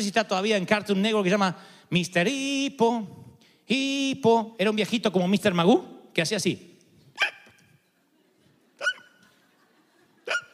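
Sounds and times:
speech: 0.0 - 7.3
faint noise: 0.0 - 10.5
person imitating hiccups with their voice: 7.2 - 7.6, 10.3 - 10.5
laughter: 8.0 - 10.5.

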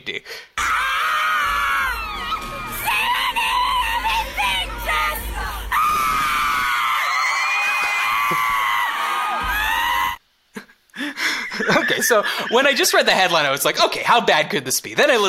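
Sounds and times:
speech: 0.0 - 0.8, 11.6 - 15.2
crowd of fans screaming at a pop concert: 0.6 - 10.2
laughter: 11.3 - 13.0.

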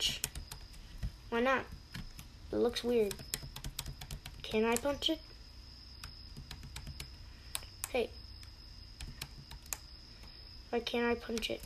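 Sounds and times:
speech: 0.0 - 0.3, 1.3 - 1.8, 2.5 - 3.3, 4.5 - 5.3, 7.9 - 8.2, 10.7 - 11.6
low hum: 0.0 - 11.6
computer mouse clicking: 0.1 - 1.1, 1.7 - 2.3, 3.0 - 4.9, 6.0 - 9.9, 11.2 - 11.6.

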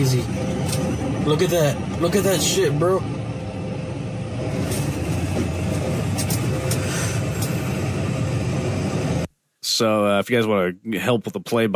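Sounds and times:
speech: 0.0 - 3.2, 9.8 - 11.7
car engine drone cruising along a highway behind a semi truck: 0.0 - 9.3
road rumble from a car cruising along a highway: 0.0 - 9.3.

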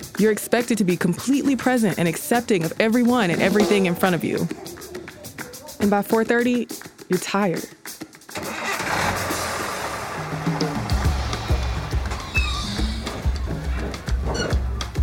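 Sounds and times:
speech: 0.2 - 5.0, 5.8 - 7.8
heavy diesel bus engine starting and idling: 8.4 - 15.0.

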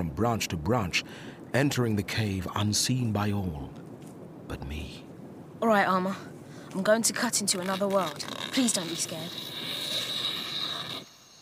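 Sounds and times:
soft hiss: 0.0 - 11.4
speech: 0.1 - 3.8, 4.5 - 5.0, 5.6 - 9.8
insects trilling at night: 6.9 - 11.4.

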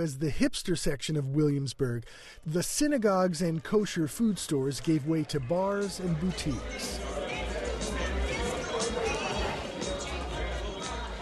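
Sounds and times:
speech: 0.0 - 7.2
babble of many voices at a busy indoor party venue: 2.9 - 11.1.

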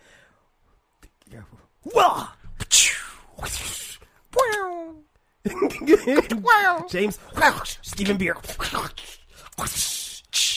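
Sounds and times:
speech: 1.3 - 2.4, 5.8 - 9.9
voice imitating a whip crack with breathy hiss: 1.9 - 4.9, 7.4 - 10.5.

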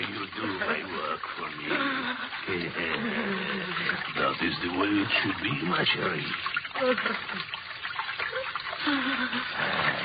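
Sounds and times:
water rushing through a sewer: 0.0 - 10.0
speech: 2.5 - 7.6, 8.8 - 10.0.

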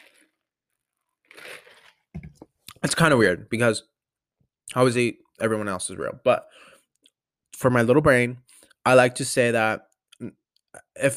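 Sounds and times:
slurping sips from an oat milk latte: 1.3 - 2.0
speech: 2.8 - 3.9, 4.7 - 6.7, 7.5 - 10.4, 11.0 - 11.1.

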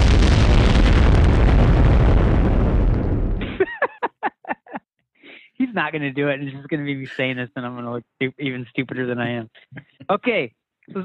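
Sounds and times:
head-explosion sound effect roaring and rumbling: 0.0 - 3.8
laughter: 3.4 - 4.8, 5.6 - 7.6
speech: 5.8 - 11.0
short pitched vocal bursts: 7.0 - 7.6.

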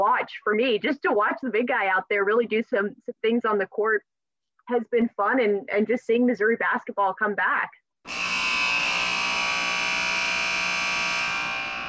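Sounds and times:
speech: 0.0 - 8.2
buzzer horn blaring: 8.1 - 11.8.

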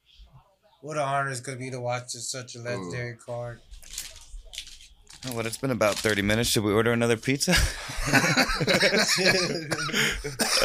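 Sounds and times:
speech: 0.8 - 3.8, 5.2 - 10.6
person laughing and chortling: 7.5 - 10.6
harsh coughs: 9.6 - 10.6.

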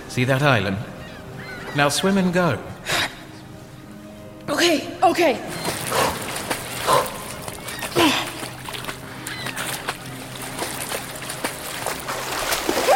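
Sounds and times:
speech: 0.2 - 1.0, 1.7 - 2.7, 4.6 - 6.0, 8.0 - 8.3
steady wash of water: 5.5 - 12.9
dog barking in short sharp bursts: 6.8 - 7.2.

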